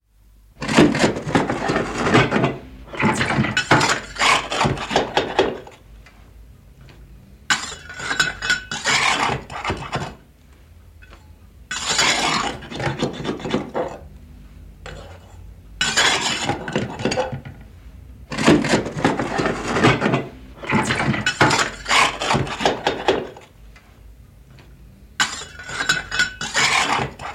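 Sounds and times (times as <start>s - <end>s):
shoveling ash from a fireplace: 0.6s - 5.6s, 7.5s - 10.2s, 11.7s - 13.7s, 14.9s - 17.2s, 18.3s - 23.4s, 25.2s - 27.3s.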